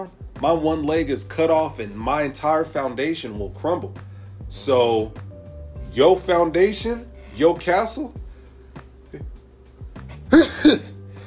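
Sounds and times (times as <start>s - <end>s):
speech: 0.0s - 5.2s, 5.9s - 8.2s
person clearing throat from allergies: 10.1s - 11.0s
person coughing from allergies: 10.1s - 11.0s.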